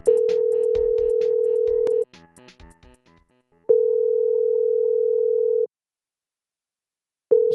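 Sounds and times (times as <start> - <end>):
telephone call ringing tone: 0.1 - 2.0, 3.7 - 5.7, 7.3 - 7.5.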